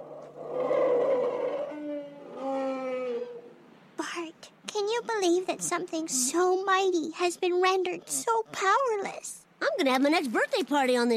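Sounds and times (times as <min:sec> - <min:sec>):
stranded whale moaning calls: 0:00.0 - 0:03.6
speech: 0:05.0 - 0:11.1.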